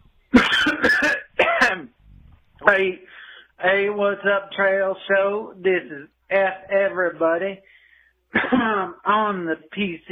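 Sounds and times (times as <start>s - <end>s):
person coughing harshly: 0.4s - 1.9s, 8.4s - 8.9s
speech: 2.7s - 10.0s.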